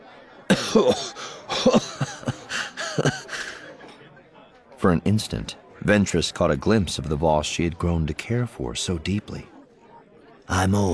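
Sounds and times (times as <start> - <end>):
laughter: 0.0 - 4.2
man coughing raspily after downing a shot of liquor: 0.5 - 3.4
speech: 0.7 - 2.2, 4.8 - 9.5, 10.5 - 10.9
strained wheezing breaths: 2.3 - 3.8.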